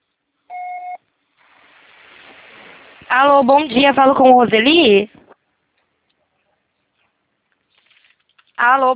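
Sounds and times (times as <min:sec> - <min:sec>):
phone answering machine electronic beep: 0:00.5 - 0:01.0
low steady hiss of phone line noise: 0:00.8 - 0:08.9
speech: 0:03.1 - 0:05.2, 0:08.6 - 0:08.9.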